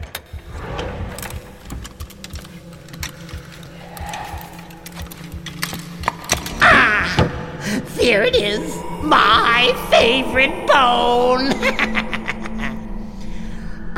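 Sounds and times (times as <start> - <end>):
wooden bottom drawer scraping and creaking as it slides open: 0.1 - 6.5
contents rattling and clattering inside drawer: 1.1 - 6.6
speech: 8.1 - 12.2.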